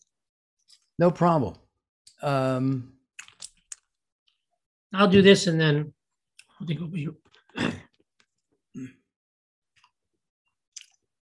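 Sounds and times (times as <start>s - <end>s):
speech: 1.0s - 1.6s, 2.2s - 3.0s, 4.9s - 6.0s, 6.6s - 7.8s, 8.8s - 9.0s
person coughing from a dry throat: 7.5s - 7.9s
throat clearing from a dry throat: 7.5s - 8.0s, 8.8s - 9.1s.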